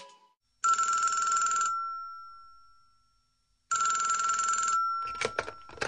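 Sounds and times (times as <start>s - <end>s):
telephone ringing: 0.6s - 2.7s, 3.7s - 5.8s.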